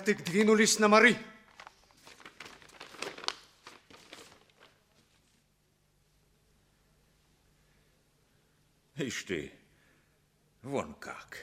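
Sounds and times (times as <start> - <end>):
speech: 0.0 - 1.4, 9.1 - 9.6, 10.6 - 11.4
paper envelope crinkling and rustling as it is opened and unfolded: 1.5 - 5.5.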